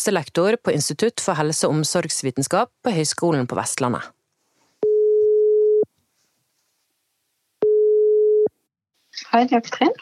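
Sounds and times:
speech: 0.0s - 4.2s, 9.3s - 9.9s
telephone ringback tone while placing a call: 4.8s - 5.9s, 7.6s - 8.5s.

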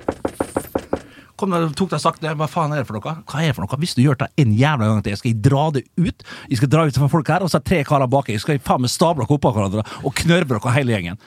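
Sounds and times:
knuckles knocking on a car window: 0.0s - 1.1s
speech: 1.4s - 11.2s.

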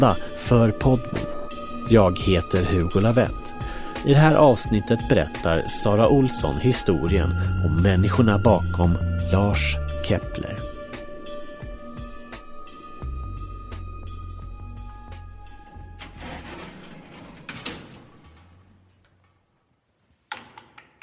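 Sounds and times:
speech: 0.0s - 1.3s, 1.9s - 3.4s, 4.0s - 10.6s
apartment door in central Stockholm unlatched and opened: 14.9s - 19.3s.

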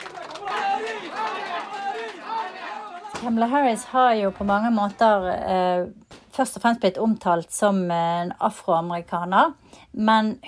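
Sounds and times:
indoor village crowd cheering and chattering in front of a TV: 0.0s - 5.5s
speech: 3.2s - 10.4s.

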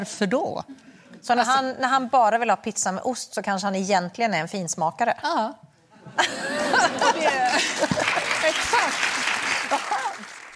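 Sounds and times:
speech: 0.0s - 9.0s
laughter: 6.0s - 10.4s
crowd applauding: 7.1s - 10.5s.

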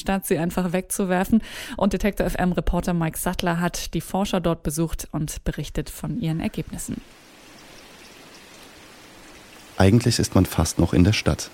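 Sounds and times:
speech: 0.0s - 7.3s, 9.8s - 11.5s
small brook flowing between meadows in northern Leipzig Germany: 6.3s - 11.5s.

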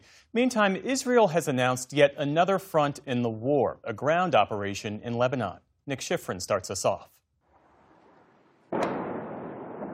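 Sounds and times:
speech: 0.3s - 7.2s
explosion from a bombardment in the southern suburbs of Beirut: 7.7s - 9.9s.

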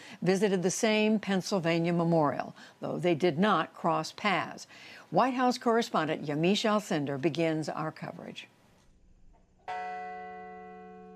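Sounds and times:
speech: 0.2s - 8.6s
memorial bell tolling at the Flight 93 memorial in Shanksville, Pennsylvania: 9.6s - 11.1s.

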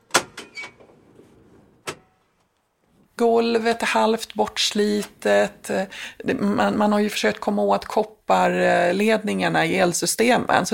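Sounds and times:
sharp clunks and door clicks of a pickup truck: 0.0s - 0.9s, 1.8s - 2.2s
pickup truck door slam: 1.8s - 2.2s
speech: 3.2s - 10.7s.

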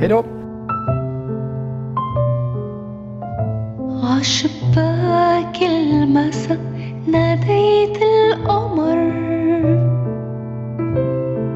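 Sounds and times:
speech: 0.0s - 0.4s, 4.1s - 9.9s
melodic film theme with Arabic vocals: 0.0s - 3.8s.

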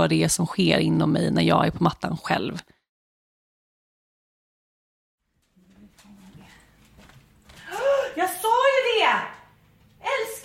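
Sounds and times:
speech: 0.0s - 2.8s
dog's paws pattering across a hard floor in a house by Lake Mälaren: 5.3s - 10.4s.

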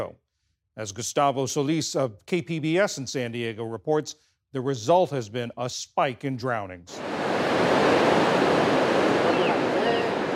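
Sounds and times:
speech: 0.8s - 7.7s
ocean waves crashing on the shore: 7.0s - 10.3s.

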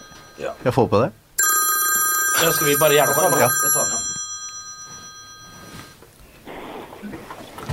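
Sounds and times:
telephone ringing with electronic trill: 0.0s - 0.7s, 1.4s - 6.0s
speech: 0.4s - 1.2s, 2.4s - 4.1s
rustling and handling noise: 4.0s - 6.4s.

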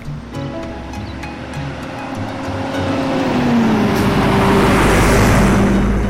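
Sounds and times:
bus engine pulling away: 0.0s - 6.0s.

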